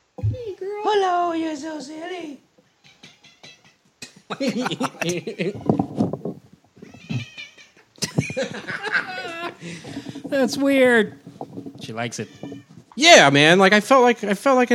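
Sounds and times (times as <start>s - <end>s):
speech: 0.6s - 2.4s, 4.3s - 5.8s, 8.4s - 9.0s, 9.6s - 11.2s, 11.8s - 14.7s
laughter: 4.0s - 5.7s, 8.0s - 9.9s
female cat meowing with drawn-out wavering yowls: 5.4s - 6.1s, 6.8s - 7.8s, 11.9s - 12.9s.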